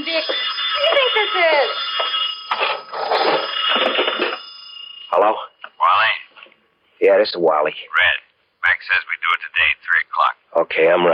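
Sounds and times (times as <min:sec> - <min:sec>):
telephone bell ringing: 0:00.0 - 0:06.0
speech: 0:01.2 - 0:02.1, 0:07.1 - 0:08.2, 0:08.8 - 0:11.1.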